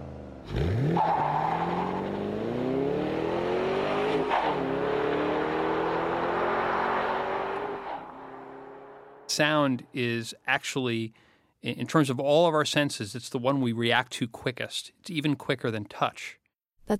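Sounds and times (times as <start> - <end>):
2008 Ford Mustang Bullitt engine revving while driving: 0.0 - 9.3
speech: 9.4 - 16.9.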